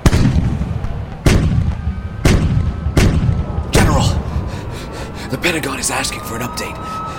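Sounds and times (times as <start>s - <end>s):
heavy gunfire in battle fired on a commander's order: 0.0s - 4.0s
speech: 5.4s - 7.0s.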